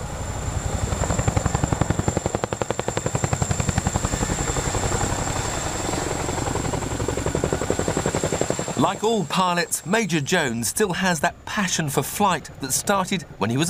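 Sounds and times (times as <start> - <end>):
large helicopter high engine whine: 0.0 - 10.2
large helicopter rotor blades chopping: 0.0 - 13.6
speech: 8.9 - 13.6.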